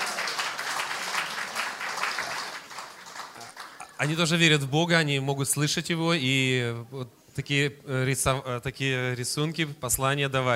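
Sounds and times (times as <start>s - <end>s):
church congregation applauding: 0.0s - 4.4s
speech: 4.0s - 10.5s.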